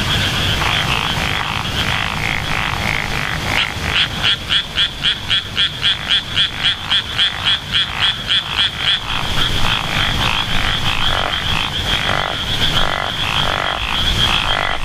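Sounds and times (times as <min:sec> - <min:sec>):
Japanese wrinkled frog croaking: 0:00.0 - 0:14.8.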